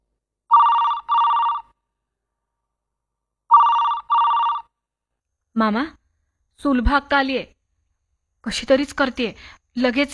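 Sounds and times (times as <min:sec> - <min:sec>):
telephone ringing with electronic trills: 0:00.5 - 0:01.8, 0:03.5 - 0:04.8
speech: 0:05.6 - 0:06.0, 0:06.6 - 0:07.5, 0:08.4 - 0:10.1.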